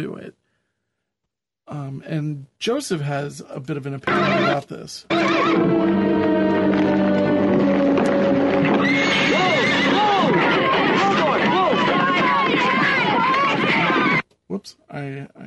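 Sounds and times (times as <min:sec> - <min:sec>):
speech: 0:00.0 - 0:00.4, 0:01.7 - 0:07.3, 0:14.5 - 0:15.4
horse whinnying: 0:04.1 - 0:05.7
horse hooves clopping on the ground: 0:06.7 - 0:14.2.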